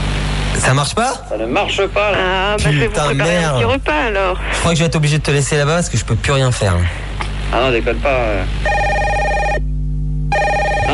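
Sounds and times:
speech: 0.6 - 8.9
telephone ringing with a bright electronic ringtone: 8.6 - 9.6, 10.3 - 10.9.

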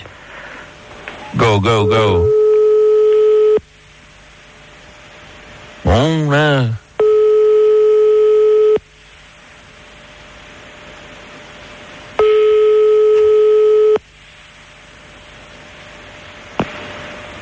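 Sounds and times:
speech: 1.3 - 2.4, 6.0 - 6.8
telephone ringback tone on a call placed to a home: 2.2 - 3.6, 7.0 - 8.8, 12.2 - 14.0
telephone line click: 13.1 - 13.4.

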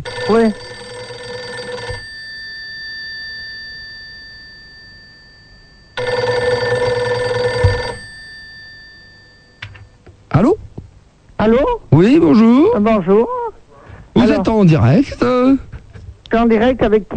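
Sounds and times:
speech: 0.0 - 0.8, 11.4 - 13.4, 14.4 - 15.7, 16.3 - 17.1
electronic telephone ring tones during a phone call: 0.0 - 10.0.

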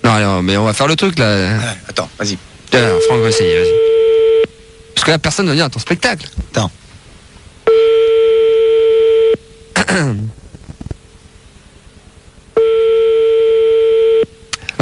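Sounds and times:
speech: 0.1 - 3.9, 5.0 - 6.8, 9.9 - 10.4
telephone ringback tone on a call: 2.8 - 4.5, 7.7 - 9.4, 12.6 - 14.3.

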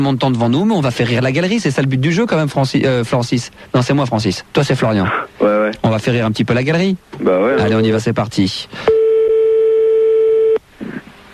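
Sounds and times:
speech: 0.0 - 9.0
telephone line tone while a call is being placed: 8.9 - 10.6.

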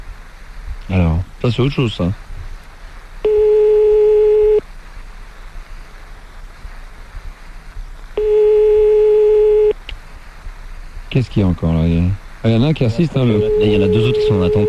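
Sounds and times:
faint low hiss: 0.0 - 14.6
speech: 0.9 - 2.2, 11.2 - 14.6
telephone ringback tone while placing a phone call: 3.2 - 4.6, 8.2 - 9.8, 13.3 - 14.6.

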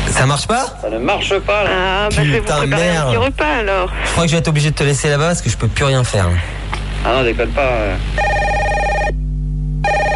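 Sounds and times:
speech: 0.2 - 8.4
telephone ringing with bright electronic tone: 8.2 - 9.2, 9.8 - 10.1.

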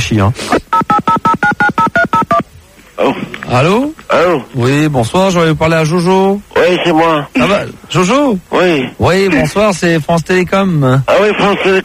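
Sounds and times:
speech: 0.1 - 0.6, 3.0 - 11.8
telephone keypad dialing tones placing a phone call: 0.7 - 2.4.

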